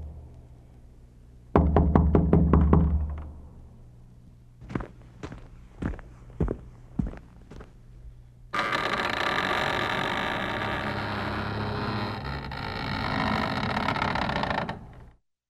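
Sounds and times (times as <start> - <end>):
door creaking: 1.6 - 3.5, 8.5 - 15.2
footsteps: 4.6 - 8.0.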